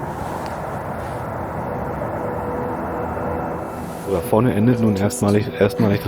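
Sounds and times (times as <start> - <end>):
train rolling past nearby: 0.0 - 6.0
speech: 4.1 - 6.0.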